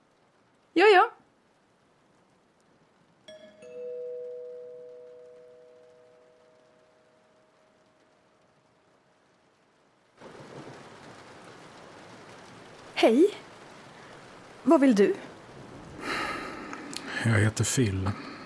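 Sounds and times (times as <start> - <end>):
heavy storm rain: 0.0 - 18.4
doorbell chiming: 3.3 - 7.2
speech: 13.0 - 13.4, 14.7 - 15.3, 17.3 - 18.3.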